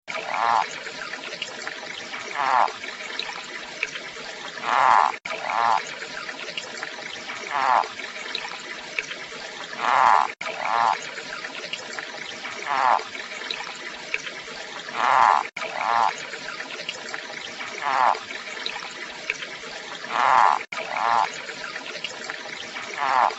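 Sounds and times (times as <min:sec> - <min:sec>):
foothill yellow-legged frog: 0:00.2 - 0:00.7, 0:02.3 - 0:02.7, 0:04.6 - 0:05.8, 0:07.5 - 0:07.9, 0:09.8 - 0:11.0, 0:12.6 - 0:13.0, 0:15.0 - 0:16.2, 0:17.8 - 0:18.2, 0:20.1 - 0:21.3, 0:23.0 - 0:23.3.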